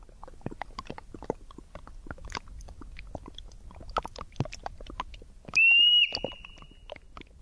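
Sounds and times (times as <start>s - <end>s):
melting snow ticking and dripping: 0.0s - 7.3s
Olympic marmot whistle: 5.6s - 6.7s.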